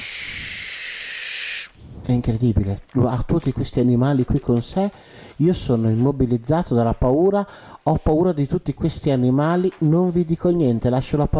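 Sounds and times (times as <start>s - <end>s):
snake hissing: 0.0s - 2.1s
speech: 2.1s - 11.3s.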